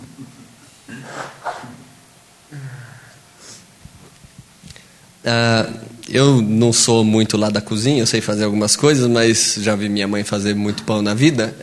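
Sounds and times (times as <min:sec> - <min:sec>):
person blowing nose: 0:00.9 - 0:01.8
quiet sniffs: 0:00.9 - 0:01.8, 0:03.1 - 0:03.7
speech: 0:05.2 - 0:11.6.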